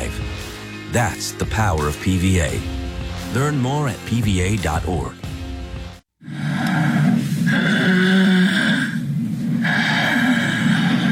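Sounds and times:
speech: 0.9 - 5.2
loud rattling snoring: 6.2 - 11.1.

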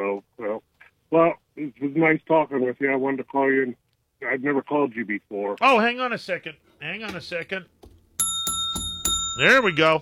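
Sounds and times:
speech: 2.0 - 7.8, 9.4 - 10.0
small metallic bell ringing: 8.2 - 10.0.

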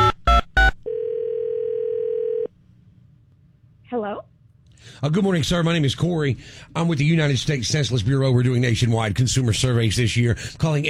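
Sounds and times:
steady dial-style phone tone: 0.0 - 2.5
speech: 3.9 - 10.8.

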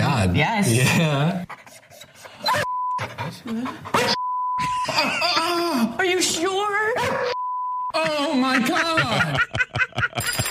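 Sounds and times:
speech: 0.2 - 1.8, 2.5 - 4.2, 4.8 - 7.3, 7.9 - 10.4
dog panting: 1.4 - 4.2
laughter: 3.5 - 5.9, 8.0 - 10.4
long steady electronic bleeps: 4.1 - 5.0, 7.3 - 8.5.

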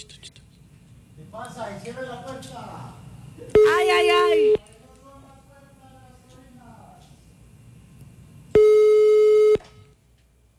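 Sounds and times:
people talking quietly: 0.0 - 8.5
telephone busy signal beeps: 3.6 - 4.6, 8.6 - 9.9.

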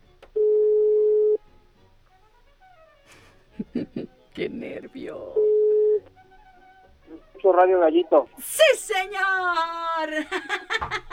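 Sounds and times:
telephone ringback tone beep: 0.4 - 1.4, 5.3 - 6.1
laughter: 3.1 - 4.2, 9.6 - 11.1
speech: 3.6 - 5.6, 7.4 - 11.1.

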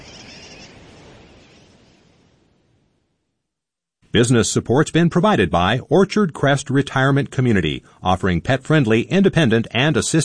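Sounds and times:
sooty tern colony calling: 0.0 - 1.7
speech: 4.1 - 10.2.

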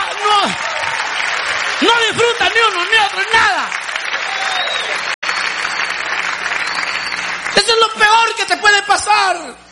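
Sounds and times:
hand clapping: 0.2 - 7.7
speech: 7.6 - 9.6.

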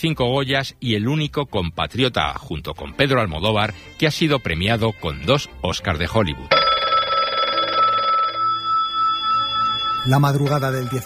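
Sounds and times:
speech: 0.0 - 6.6, 10.0 - 11.0
telephone bell ringing in a rapid metallic trill: 6.5 - 11.0.

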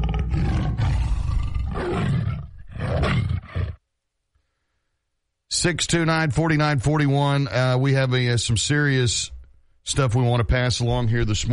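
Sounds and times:
tiger roaring: 0.0 - 3.8
speech: 5.6 - 11.5.

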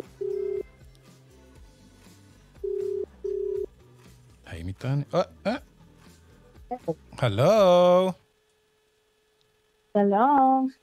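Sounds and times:
electronic ringback tones from an outgoing phone call: 0.0 - 0.7, 2.6 - 3.7
soft music: 0.0 - 8.2
speech: 4.8 - 5.6, 6.9 - 8.2, 10.0 - 10.8.

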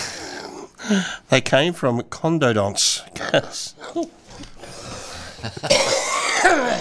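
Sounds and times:
speech: 0.9 - 6.8
person coughing throatily and raspily: 5.5 - 6.8
throat clearing: 5.6 - 6.8.

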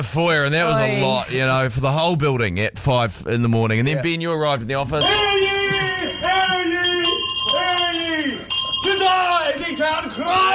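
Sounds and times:
speech: 0.0 - 5.5, 9.1 - 10.5
loud bell ringing in a building foyer to announce an arrival: 5.0 - 10.5.

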